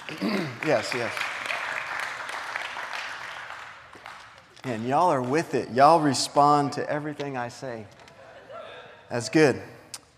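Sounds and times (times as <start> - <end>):
crowd applauding at an evening church service: 0.0 - 6.2
speech: 0.1 - 1.3, 4.6 - 8.0, 9.1 - 9.8.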